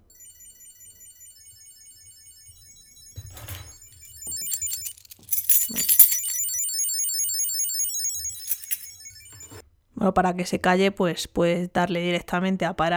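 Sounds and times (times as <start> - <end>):
Bluetooth key tracker ringing with a high-pitched electronic chirping melody: 0.0 - 9.6
keys jingling and rattling as they are handled: 3.0 - 6.8, 7.8 - 9.1
speech: 10.0 - 12.9.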